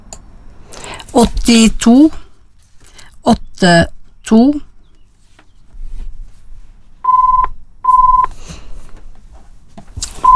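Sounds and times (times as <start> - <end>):
speech: 1.2 - 2.2, 3.2 - 4.7
telephone ringing with short electronic beeps: 7.0 - 8.3.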